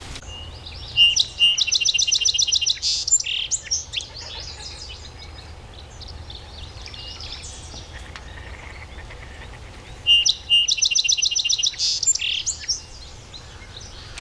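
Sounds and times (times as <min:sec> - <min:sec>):
song sparrow: 0:00.0 - 0:14.1.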